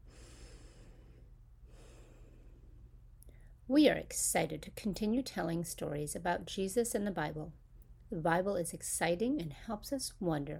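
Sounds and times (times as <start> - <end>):
deep breath taken to get ready: 0.0 - 3.6
speech: 3.7 - 10.5.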